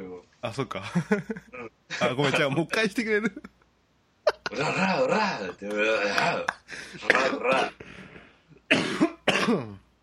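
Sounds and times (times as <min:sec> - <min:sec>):
speech: 0:00.4 - 0:03.5, 0:04.5 - 0:07.9, 0:08.7 - 0:09.8
person with a cold coughing: 0:06.0 - 0:07.8, 0:08.7 - 0:09.8.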